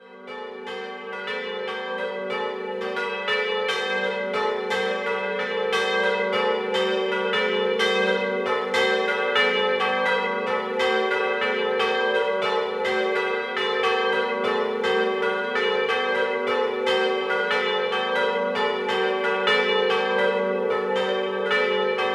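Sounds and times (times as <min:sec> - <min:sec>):
bells ringing: 0:00.0 - 0:22.1.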